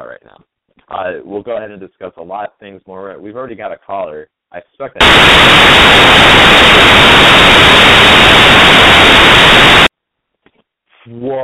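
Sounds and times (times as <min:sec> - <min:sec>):
speech: 0:00.2 - 0:08.8, 0:11.1 - 0:11.4
loud static on a band-limited phone line: 0:05.0 - 0:09.9.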